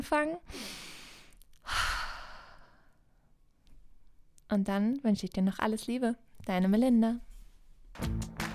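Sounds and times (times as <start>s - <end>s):
speech: 0.0s - 0.8s, 4.5s - 7.3s, 8.0s - 8.4s
person breathing deeply in and out: 0.5s - 3.0s.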